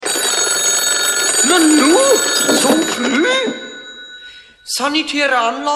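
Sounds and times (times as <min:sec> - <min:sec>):
telephone ringing with a tube-like tone: 0:00.0 - 0:05.6.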